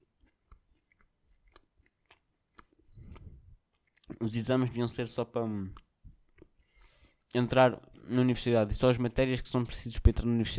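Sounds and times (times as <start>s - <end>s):
person chewing crunchy food: 0.0s - 4.3s, 5.7s - 7.3s
speech: 4.2s - 5.8s, 7.3s - 10.5s.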